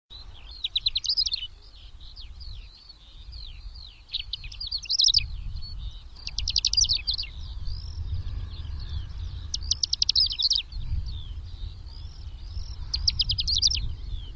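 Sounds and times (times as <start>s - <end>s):
birds twittering: 0.1s - 14.3s
low rumble: 7.1s - 9.8s, 10.6s - 14.3s.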